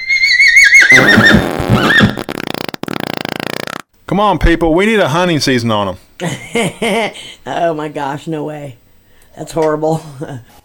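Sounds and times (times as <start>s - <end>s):
horse neighing with a high quavering whinny: 0.0s - 2.3s
speech: 4.2s - 8.8s, 9.4s - 10.6s.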